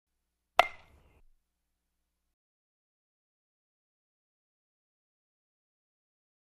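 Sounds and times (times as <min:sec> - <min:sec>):
aluminum bat hitting ball: 0:00.6 - 0:01.2.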